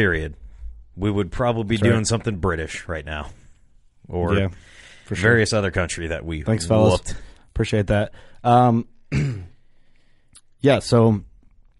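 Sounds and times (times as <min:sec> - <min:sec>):
speech: 0:00.0 - 0:00.4, 0:01.0 - 0:03.4, 0:04.0 - 0:09.5, 0:10.6 - 0:11.3
person coughing: 0:09.1 - 0:09.6.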